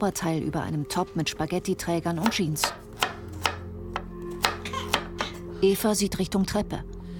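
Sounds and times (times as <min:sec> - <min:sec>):
speech: 0:00.0 - 0:02.8, 0:05.6 - 0:06.9
knife chopping carrots on a kitchen counter: 0:02.2 - 0:05.4.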